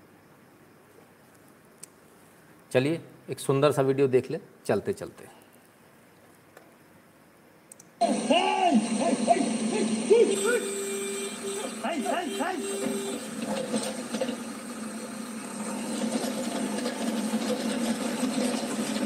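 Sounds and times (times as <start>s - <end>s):
speech: 2.7s - 5.4s
voices and rising calls: 8.0s - 13.3s
excavator engine droning while digging a path: 8.0s - 19.0s.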